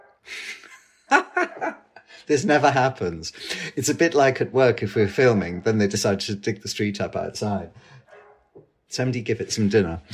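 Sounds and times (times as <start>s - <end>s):
dog barking outside: 0.0s - 0.3s, 8.0s - 8.6s
laughter: 0.3s - 4.0s
speech: 2.3s - 8.0s, 8.9s - 10.1s.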